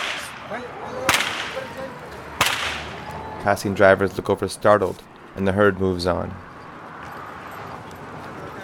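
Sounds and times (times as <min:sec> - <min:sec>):
small whip cracking: 0:00.0 - 0:00.5, 0:01.1 - 0:01.7, 0:02.4 - 0:03.0
speech: 0:00.5 - 0:02.3, 0:03.4 - 0:06.5.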